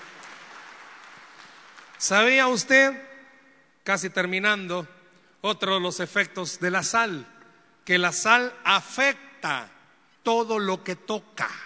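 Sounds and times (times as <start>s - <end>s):
audience clapping: 0.0s - 2.6s
speech: 2.0s - 3.1s, 3.9s - 7.3s, 7.9s - 11.6s.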